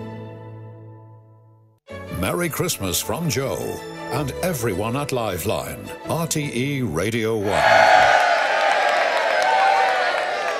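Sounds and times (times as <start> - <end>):
speech: 2.2 - 8.0
studio audience applauding at a Christmas radio programme: 7.4 - 10.5
studio audience whooping and shouting at a Christmas radio programme: 7.4 - 10.5.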